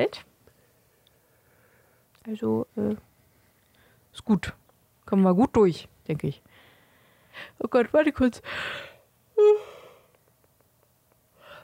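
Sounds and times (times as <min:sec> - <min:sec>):
speech: 0:00.0 - 0:00.3, 0:02.3 - 0:03.1, 0:04.2 - 0:06.5, 0:07.4 - 0:09.6
quiet breathing: 0:00.4 - 0:02.2, 0:03.1 - 0:04.1, 0:06.4 - 0:07.6, 0:08.4 - 0:10.2, 0:11.3 - 0:11.6
person yawning: 0:09.4 - 0:10.1.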